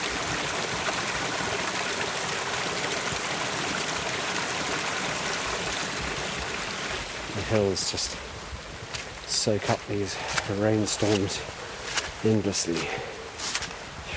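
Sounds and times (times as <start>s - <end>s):
water rushing over a concrete weir on a Welsh hillside in winter: 0.0s - 8.1s
speech: 7.5s - 8.3s, 9.4s - 11.6s, 12.2s - 13.2s.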